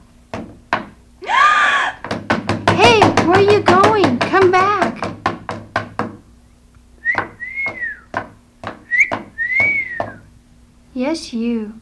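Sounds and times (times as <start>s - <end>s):
sharp knocks: 0.3s - 1.0s, 2.0s - 6.2s, 7.1s - 10.2s
person whistling two swooping notes: 7.0s - 8.1s, 8.8s - 10.3s
speech: 11.0s - 11.8s.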